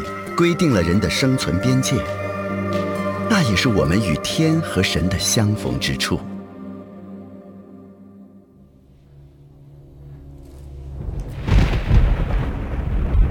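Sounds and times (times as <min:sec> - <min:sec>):
speech: 0:00.4 - 0:02.8, 0:03.4 - 0:06.3
summer thunder rumbling: 0:11.0 - 0:13.3.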